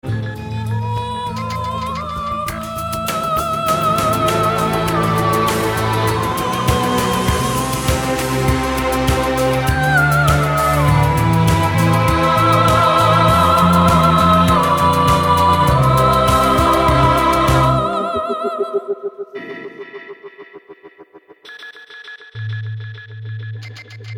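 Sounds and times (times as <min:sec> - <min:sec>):
lyric singing: 0:01.0 - 0:19.4.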